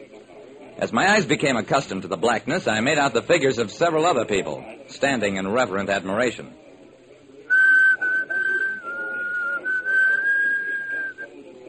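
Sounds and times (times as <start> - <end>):
speech: 0.8 - 6.6
person whistling a low almost tuneless note: 7.5 - 11.3.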